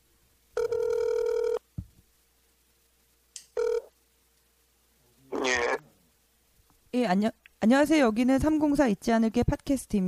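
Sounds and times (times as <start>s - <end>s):
telephone ringing through an earpiece while a call connects: 0.6s - 1.6s, 3.6s - 3.9s
speech: 7.0s - 10.0s.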